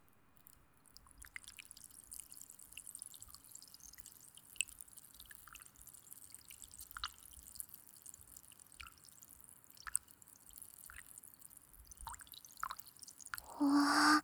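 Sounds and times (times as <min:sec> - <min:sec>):
cotton swab soaked in fizzy carbonated drink fizzing: 0:01.3 - 0:14.2.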